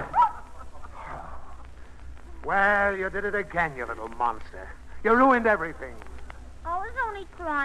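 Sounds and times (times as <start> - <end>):
dog barking: 0.0 - 0.6
dogs whining and yelping: 0.0 - 1.3
speech: 2.5 - 7.6.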